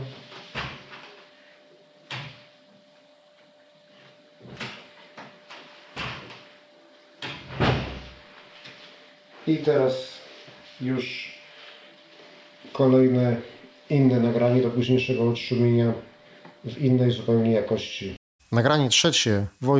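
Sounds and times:
quiet room hum: 0:00.0 - 0:19.7
door opening and closing: 0:07.2 - 0:08.2
speech: 0:09.5 - 0:10.2, 0:10.8 - 0:11.4, 0:12.8 - 0:19.7.

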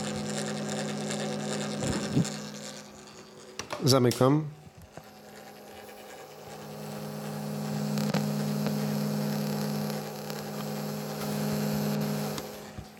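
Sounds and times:
cassette recorder tape mechanism running with low motor hum: 0:00.0 - 0:12.9
speech: 0:02.1 - 0:02.4, 0:03.8 - 0:04.6.

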